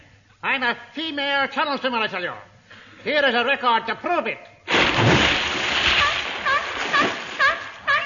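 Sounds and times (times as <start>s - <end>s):
speech: 0.5s - 5.1s
water splashing: 4.7s - 7.9s.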